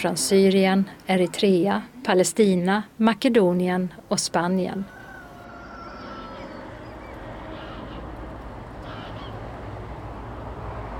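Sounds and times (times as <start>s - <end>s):
speech: 0.0s - 5.0s
migrating bird flock honking and cawing: 5.5s - 8.2s, 8.8s - 9.4s.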